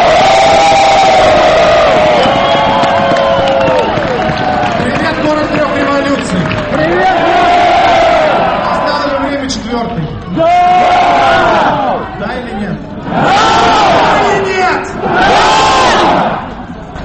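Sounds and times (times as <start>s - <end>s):
loud rally crowd shouting: 0.0s - 4.8s, 6.7s - 9.2s, 10.3s - 12.2s, 13.0s - 16.7s
large rally crowd cheering: 0.0s - 9.6s, 10.2s - 12.1s, 13.0s - 16.7s.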